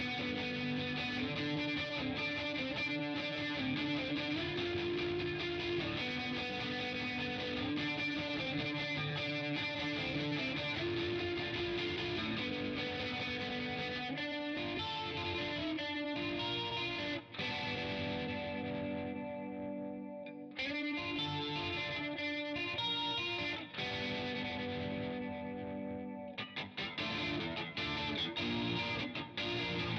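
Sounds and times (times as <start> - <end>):
guitar: 0.0 - 29.9.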